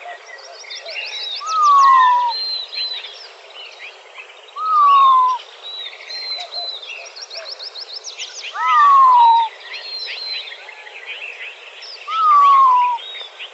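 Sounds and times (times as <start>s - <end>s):
chorus of chirping songbirds in Arizona: 0.0s - 13.5s
Montezuma quail giving a descending whistle in Arizona: 4.6s - 5.4s, 8.6s - 9.5s, 12.1s - 13.0s.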